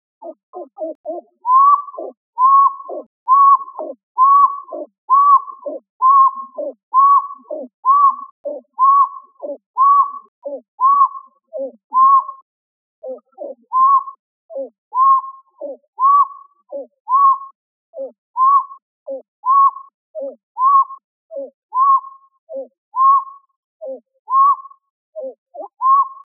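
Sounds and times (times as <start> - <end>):
pied-billed grebe calling: 0.2 - 12.4, 13.0 - 26.3.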